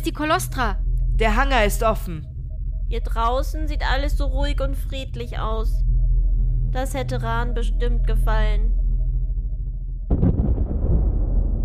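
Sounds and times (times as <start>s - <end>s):
speech: 0.0s - 2.3s, 2.9s - 5.9s, 6.7s - 8.8s
low steady rumble: 0.0s - 11.6s
sudden loud blast: 10.1s - 11.6s.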